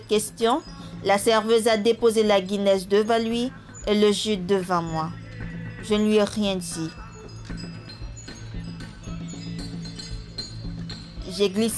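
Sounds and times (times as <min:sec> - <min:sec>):
speech: 0:00.1 - 0:05.2, 0:05.8 - 0:07.0, 0:11.4 - 0:11.7
glasses clinking together in a busy room: 0:07.0 - 0:11.7.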